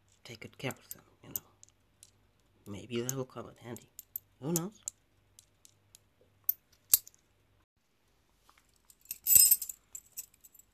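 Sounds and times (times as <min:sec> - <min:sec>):
speech: 0:00.3 - 0:01.5, 0:02.6 - 0:04.9
apartment and building keys jangling: 0:08.9 - 0:10.7.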